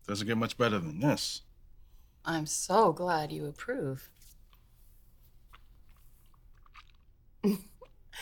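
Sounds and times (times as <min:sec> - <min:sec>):
speech: 0:00.1 - 0:01.5, 0:02.2 - 0:04.2, 0:07.4 - 0:07.7
quiet slurping: 0:04.2 - 0:08.1
bourbon being chewed and swished in the mouth: 0:04.3 - 0:08.1.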